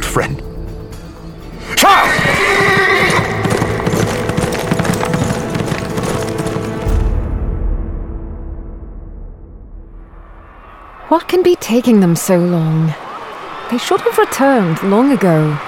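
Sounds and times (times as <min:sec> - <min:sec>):
speech: 0:00.2 - 0:00.5, 0:11.1 - 0:13.0, 0:13.7 - 0:15.6
saddled horse whinnying as rider mounts: 0:01.8 - 0:06.7
clattering horse hooves: 0:01.8 - 0:07.0.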